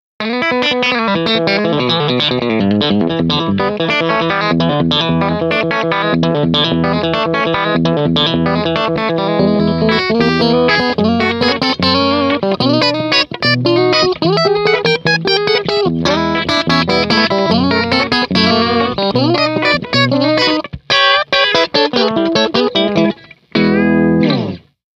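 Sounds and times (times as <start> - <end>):
country music lead: 0.2 - 24.8.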